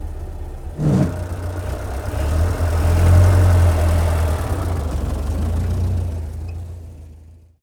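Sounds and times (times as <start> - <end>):
car engine idling: 0.0 - 3.3, 4.2 - 7.6
car stopping: 0.0 - 7.6
car gear shift: 0.8 - 1.2.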